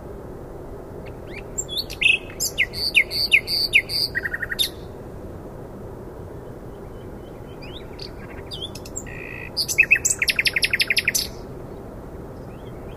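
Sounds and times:
common nightingale Luscinia megarhynchos singing: 0:01.0 - 0:04.9, 0:06.7 - 0:11.4, 0:12.4 - 0:12.9.

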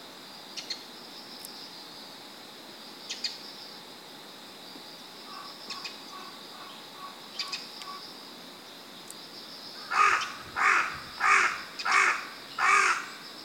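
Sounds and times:
carrion crow Corvus corone cawing: 0:05.3 - 0:08.0, 0:09.8 - 0:13.2.

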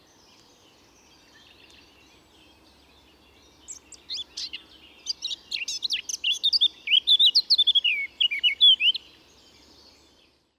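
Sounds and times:
Eurasian blackcap Sylvia atricapilla singing: 0:01.2 - 0:09.1.

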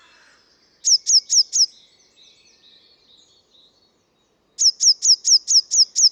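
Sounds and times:
Eurasian blue tit Cyanistes caeruleus calling: 0:00.0 - 0:01.7, 0:04.6 - 0:06.0
faint Eurasian blue tit twittering: 0:00.0 - 0:04.0, 0:04.6 - 0:06.0.

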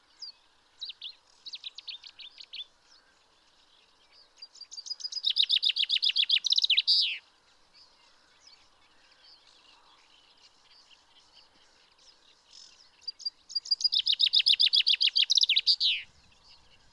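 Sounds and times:
faint background birds: 0:00.0 - 0:16.9
common chaffinch Fringilla coelebs trilling song: 0:04.4 - 0:07.2, 0:12.7 - 0:16.9.

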